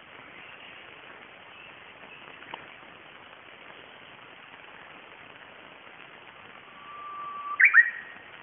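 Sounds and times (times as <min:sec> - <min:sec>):
Japanese bush warbler song: 0:00.2 - 0:02.8, 0:06.7 - 0:08.2.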